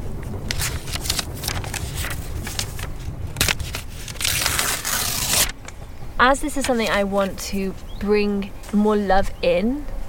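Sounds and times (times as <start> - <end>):
notebook paper crackling and rustling: 0.0 - 5.8, 6.4 - 7.9
page tearing from a paper notebook: 0.5 - 5.6
speech: 6.2 - 9.9.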